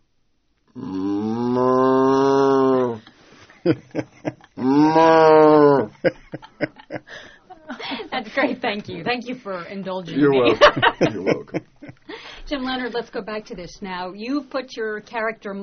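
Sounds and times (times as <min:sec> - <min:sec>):
person imitating a cow mooing: 0:00.7 - 0:03.0, 0:04.6 - 0:06.0
laughter: 0:03.5 - 0:04.8, 0:05.7 - 0:09.1, 0:10.1 - 0:12.1
speech: 0:03.6 - 0:04.2, 0:08.8 - 0:11.6, 0:12.5 - 0:15.6.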